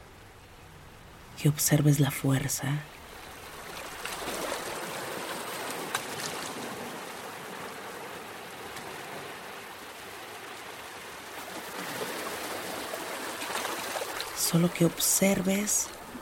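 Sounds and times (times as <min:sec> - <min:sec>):
ocean surf rolling onto a shore: 0:00.0 - 0:16.2
speech: 0:01.4 - 0:03.0, 0:14.5 - 0:16.0.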